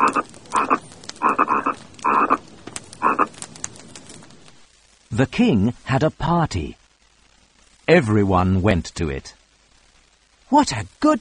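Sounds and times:
frogs croaking: 0:00.0 - 0:04.5
speech: 0:00.1 - 0:00.4, 0:05.2 - 0:06.8, 0:07.9 - 0:09.4, 0:10.5 - 0:11.1.

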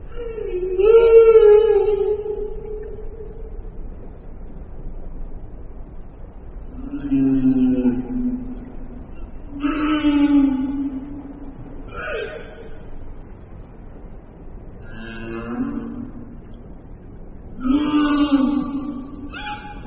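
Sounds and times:
whale singing to attract a mate: 0:00.0 - 0:04.0, 0:06.6 - 0:12.9, 0:14.8 - 0:16.6, 0:17.5 - 0:19.8.

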